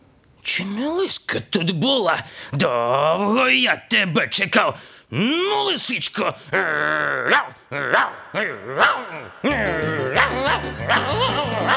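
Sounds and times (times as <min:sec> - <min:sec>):
speech: 0:00.5 - 0:11.7
shaggy dog guarding a yard barking: 0:07.3 - 0:08.2, 0:08.8 - 0:09.3, 0:10.2 - 0:11.7
laughter: 0:09.2 - 0:11.7.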